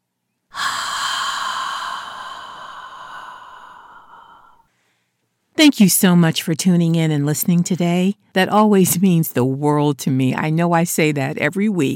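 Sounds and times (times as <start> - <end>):
deep breath: 0.5 - 5.2
speech: 5.6 - 11.9.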